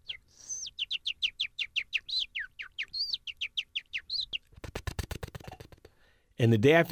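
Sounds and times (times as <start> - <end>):
person imitating bird chirps: 0.0 - 4.5
speech: 6.4 - 6.9.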